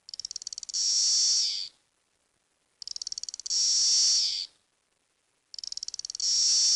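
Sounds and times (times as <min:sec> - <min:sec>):
periodical cicada male courtship song: 0:00.1 - 0:01.8, 0:02.8 - 0:04.5, 0:05.6 - 0:06.7.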